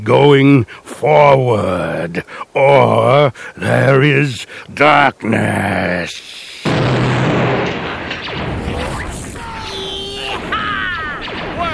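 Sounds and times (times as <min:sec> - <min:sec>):
speech: 0:00.0 - 0:07.6
blaster fire zapping during an attack: 0:06.7 - 0:11.7.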